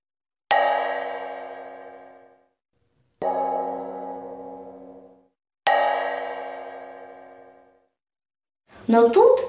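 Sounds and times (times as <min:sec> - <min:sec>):
large frying pan struck ringing like a bell: 0:00.5 - 0:02.4, 0:03.2 - 0:07.9
speech: 0:08.9 - 0:09.4.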